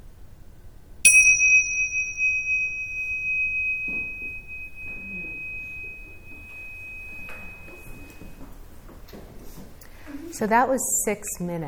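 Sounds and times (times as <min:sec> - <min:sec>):
meditation bell struck to close a meditation: 0:01.1 - 0:08.8
speech: 0:10.4 - 0:11.6.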